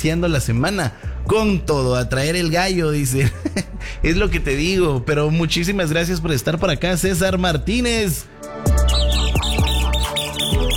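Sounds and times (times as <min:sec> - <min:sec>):
speech: 0:00.0 - 0:08.7
chicks chirping: 0:08.8 - 0:10.7.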